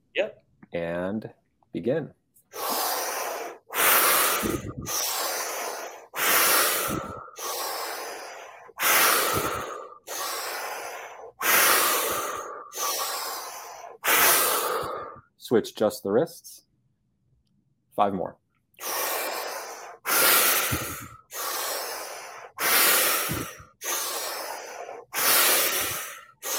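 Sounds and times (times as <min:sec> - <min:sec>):
speech: 0:00.2 - 0:02.2, 0:04.4 - 0:05.1, 0:06.9 - 0:07.2, 0:15.5 - 0:16.5, 0:18.0 - 0:18.4
forceful rhythmic inhales and exhales through the nose and mouth during guided breathwork: 0:02.4 - 0:15.5, 0:18.7 - 0:26.5.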